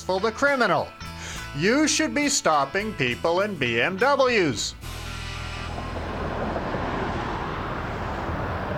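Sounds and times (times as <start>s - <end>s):
speech: 0.1s - 4.9s
road traffic on a river bridge: 3.1s - 8.7s
gusting wind on a river bridge: 5.0s - 8.7s.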